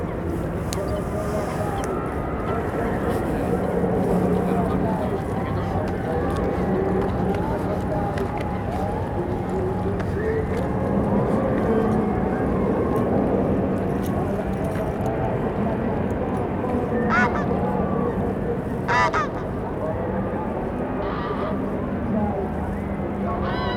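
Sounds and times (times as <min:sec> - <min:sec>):
crowd murmur of many voices at a funfair across a lake: 0:00.0 - 0:23.7.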